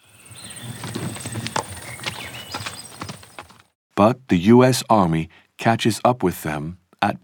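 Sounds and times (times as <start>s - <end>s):
faint outdoor noise: 0.0s - 3.7s
horse hooves clip-clopping at a walking pace: 0.1s - 3.7s
speech: 4.0s - 7.2s.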